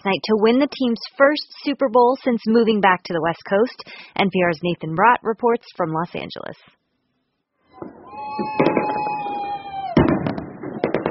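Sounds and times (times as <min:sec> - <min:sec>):
speech: 0:00.0 - 0:06.8, 0:07.8 - 0:08.7
whistling firework rockets: 0:07.7 - 0:11.1
fireworks pops and booms over stadium: 0:07.8 - 0:11.1.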